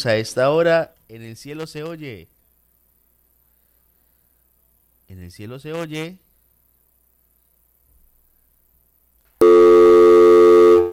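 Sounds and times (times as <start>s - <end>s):
speech: 0.0s - 2.3s, 5.1s - 6.2s
telephone line tone after a dropped call: 9.4s - 10.9s.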